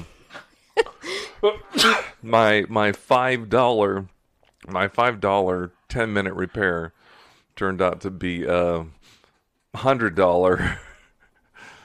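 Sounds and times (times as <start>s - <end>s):
person sneezing with gasping build-up: 1.4s - 2.2s
speech: 1.4s - 7.0s, 7.6s - 9.0s, 9.7s - 10.9s.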